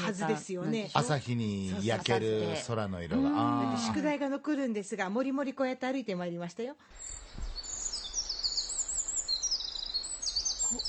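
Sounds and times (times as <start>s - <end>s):
speech: 0.1s - 7.5s
wild birds singing in a forest on a cloudy morning: 6.9s - 10.8s.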